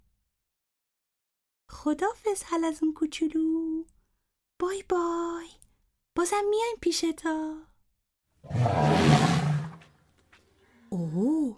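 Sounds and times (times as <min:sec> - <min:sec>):
speech: 0:01.8 - 0:03.9, 0:04.6 - 0:05.6, 0:06.2 - 0:07.7, 0:08.4 - 0:09.2, 0:10.9 - 0:11.5
elephant trumpeting: 0:08.5 - 0:09.9.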